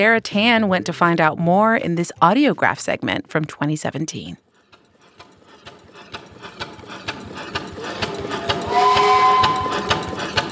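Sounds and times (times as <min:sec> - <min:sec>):
speech: 0:00.0 - 0:04.4
steam engine large gears and metal pistons clattering in a warehouse workshop: 0:04.5 - 0:10.5
hot wet steam hissing: 0:07.8 - 0:10.5
faint whistle-like tone: 0:08.6 - 0:10.1.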